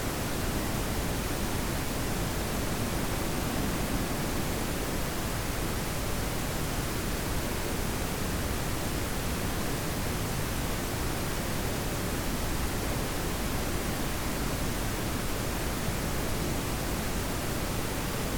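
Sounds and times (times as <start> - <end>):
steady pink noise hiss: 0.0 - 18.3.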